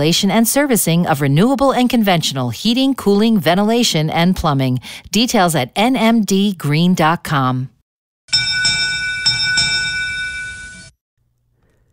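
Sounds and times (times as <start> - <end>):
speech: 0.0 - 7.7
bright metallic derby bell struck to start a fishing derby: 8.3 - 10.9.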